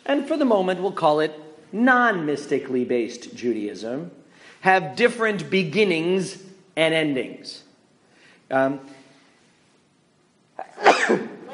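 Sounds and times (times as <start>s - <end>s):
speech: 0.2s - 7.6s, 8.5s - 9.0s, 10.8s - 11.4s
loud sneeze: 10.6s - 11.5s.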